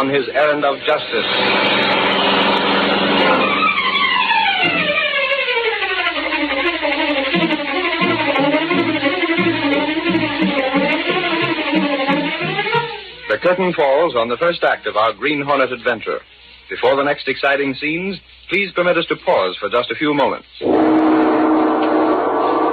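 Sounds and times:
speech: 0:00.0 - 0:02.1, 0:13.4 - 0:21.0
powerful black car engine roaring through city streets: 0:00.0 - 0:13.4, 0:20.6 - 0:22.7.

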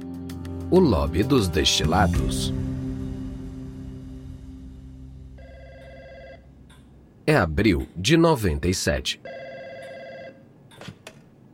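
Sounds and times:
speech: 0:00.7 - 0:02.6, 0:07.3 - 0:09.4
telephone ringing with an electronic trill: 0:05.4 - 0:06.6, 0:09.2 - 0:10.5.

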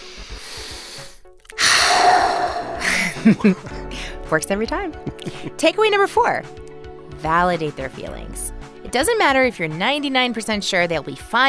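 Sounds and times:
long airy deep belly breath inhale: 0:00.0 - 0:03.2
loud rushing exhale: 0:00.0 - 0:03.2
laughter: 0:02.8 - 0:03.8, 0:05.0 - 0:05.6
speech: 0:03.2 - 0:03.7, 0:04.3 - 0:06.6, 0:07.2 - 0:11.4.

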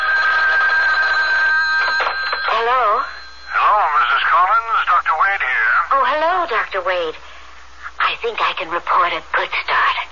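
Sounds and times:
telephone bell ringing: 0:00.0 - 0:04.6
speech: 0:02.6 - 0:03.2, 0:04.2 - 0:07.3, 0:08.1 - 0:10.0.

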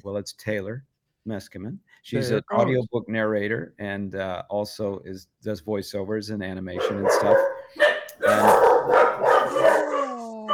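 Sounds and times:
speech: 0:00.0 - 0:09.0
three dogs barking excitedly at someone at the door: 0:06.8 - 0:10.5.

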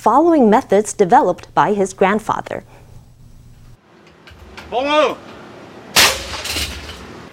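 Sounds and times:
speech: 0:00.0 - 0:02.8, 0:04.7 - 0:05.3
loud metallic bang of a puffed rice oven popping open: 0:05.9 - 0:07.1.

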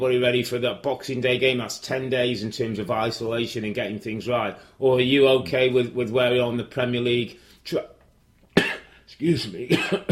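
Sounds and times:
speech: 0:00.0 - 0:07.9, 0:09.1 - 0:10.1
person coughing after swallowing coffee the wrong way: 0:08.6 - 0:09.0, 0:09.7 - 0:10.1
throat clearing: 0:08.6 - 0:09.0, 0:09.7 - 0:10.1.

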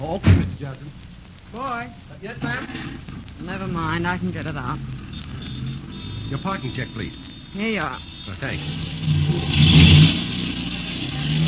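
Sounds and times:
speech: 0:00.1 - 0:10.7
car engine revving as it drives off: 0:02.5 - 0:11.4.

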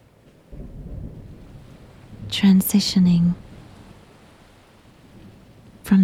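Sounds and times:
steady rain: 0:00.0 - 0:06.0
rolling low rumble: 0:00.5 - 0:06.0
speech: 0:02.3 - 0:03.4.

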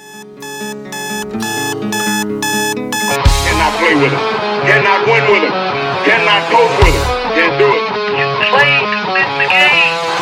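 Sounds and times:
loud harsh halftime clock buzzer: 0:00.0 - 0:03.6
speech: 0:03.9 - 0:10.2.

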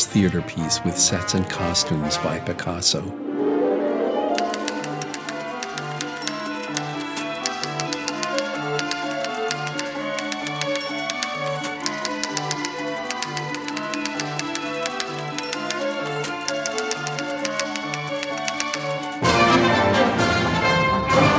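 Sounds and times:
orchestral accompaniment with pulsing low strings: 0:00.0 - 0:21.3
speech: 0:00.1 - 0:03.3
typewriter clacking played as an orchestral instrument: 0:04.4 - 0:19.2.

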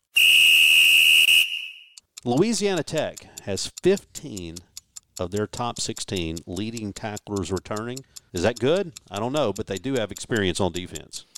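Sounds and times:
shrill whistle blast blown to start a drill: 0:00.1 - 0:02.0
speech: 0:02.2 - 0:11.3.

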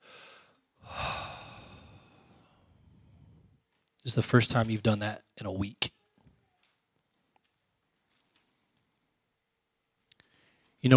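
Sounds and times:
deep breath in and out: 0:00.0 - 0:03.6, 0:10.2 - 0:10.8
speech: 0:04.0 - 0:05.9.

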